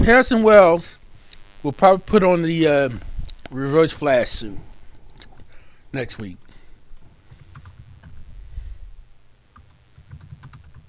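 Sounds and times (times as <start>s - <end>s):
speech: 0.0s - 1.0s, 1.6s - 4.7s, 5.9s - 6.4s
person typing an email on a computer keyboard: 7.4s - 8.1s, 9.6s - 10.8s.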